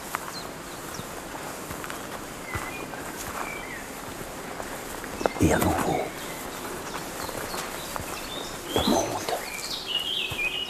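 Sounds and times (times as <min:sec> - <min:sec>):
steady ambient hiss: 0:00.0 - 0:10.6
birds chirping and singing in a forest: 0:04.5 - 0:10.6
speech: 0:05.4 - 0:06.2.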